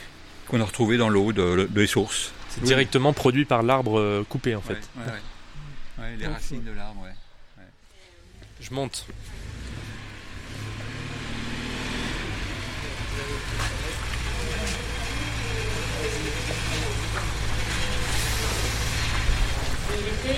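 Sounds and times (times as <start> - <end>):
speech: 0.5 - 5.3, 6.0 - 7.2, 8.6 - 9.7, 13.2 - 14.9, 19.9 - 20.3
road traffic noise from passing cars: 8.1 - 20.3.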